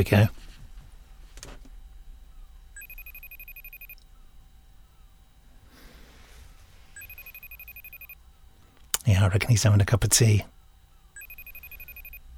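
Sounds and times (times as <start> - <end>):
speech: 0.0 - 0.5, 9.1 - 10.5
FaceTime video call ringing tone: 2.8 - 4.0, 7.0 - 8.3, 11.1 - 12.3.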